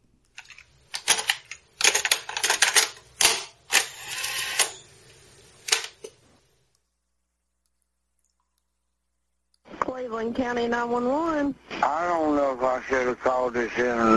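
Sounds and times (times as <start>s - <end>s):
plastic cassette tape clicking and rattling as it is loaded into a player: 0.3s - 3.9s, 5.7s - 6.2s
mechanical rattle: 0.4s - 4.8s
speech: 10.0s - 14.1s.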